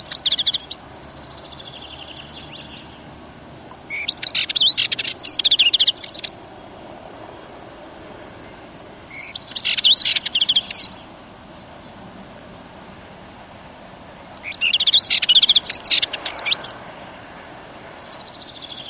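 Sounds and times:
Dartford warbler scratchy chatter: 0.0 - 3.0, 3.9 - 6.4, 9.1 - 11.1, 14.4 - 16.8, 17.9 - 18.8.

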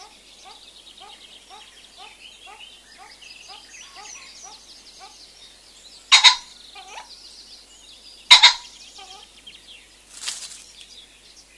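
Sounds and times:
common pheasant giving rasping double-note crows: 0.0 - 5.2, 6.1 - 7.1, 8.2 - 9.3.

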